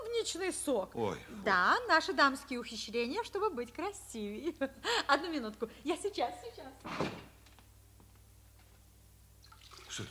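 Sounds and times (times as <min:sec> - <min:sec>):
speech: 0:00.2 - 0:07.2
running water from a tap rinsing something off: 0:09.4 - 0:10.0.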